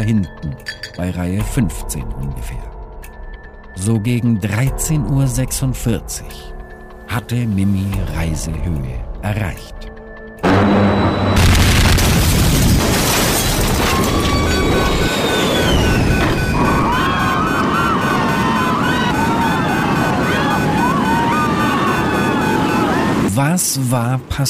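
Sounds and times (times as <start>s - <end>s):
speech: 0.1s - 2.7s, 3.8s - 9.9s, 23.7s - 24.4s
wavering alarm-like tones: 10.4s - 12.5s, 13.4s - 23.3s
explosive decompression blast of airliner fuselage: 10.4s - 21.6s.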